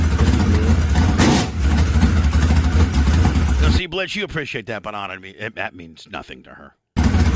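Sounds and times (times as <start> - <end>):
open-wheel modified race car engine with four-barrel carburetor idling: 0.0 - 3.8, 7.0 - 7.3
speech: 3.9 - 6.8.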